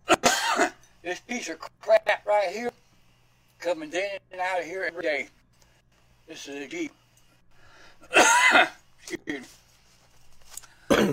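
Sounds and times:
loud raspy coughs: 0:00.0 - 0:00.8, 0:08.0 - 0:09.5, 0:10.8 - 0:11.1
speech: 0:01.3 - 0:02.8, 0:03.6 - 0:05.4, 0:06.3 - 0:07.0, 0:08.0 - 0:09.6.

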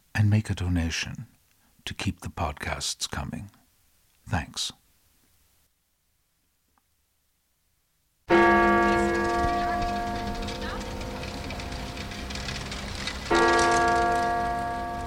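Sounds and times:
steady hiss of outdoor noise: 0:00.0 - 0:15.0
speech: 0:00.2 - 0:01.3, 0:01.9 - 0:03.6, 0:04.3 - 0:04.8
large church bell of the Westerkerk in Amsterdam tolling the hour: 0:08.3 - 0:15.0.

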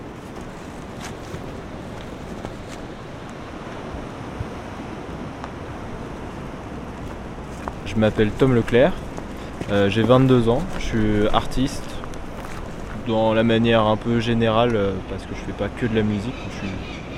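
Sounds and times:
sea surf breaking among rocks on a rocky beach: 0:00.0 - 0:17.1
wind adding a low rumble: 0:00.0 - 0:17.1
speech: 0:07.9 - 0:09.0, 0:09.7 - 0:11.9, 0:13.0 - 0:17.0.

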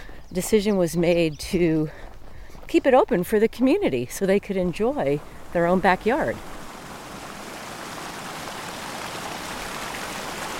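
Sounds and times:
speech: 0:00.3 - 0:02.1, 0:02.7 - 0:06.5
spring water flowing and splashing: 0:04.9 - 0:10.5.

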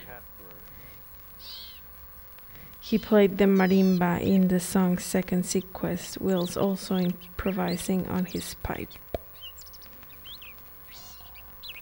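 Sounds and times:
low hum: 0:00.0 - 0:11.7
high chirping call from decoy whistles and recorders: 0:01.3 - 0:11.7
owl-like hooting notes from decoy whistles and recorders: 0:01.3 - 0:11.7
speech: 0:02.8 - 0:09.1.

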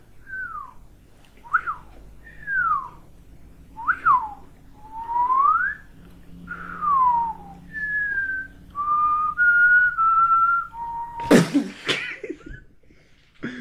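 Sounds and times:
person whistling a short tune: 0:01.4 - 0:02.9, 0:03.8 - 0:05.9, 0:06.5 - 0:11.3
brief laugh or cough: 0:11.2 - 0:12.7.

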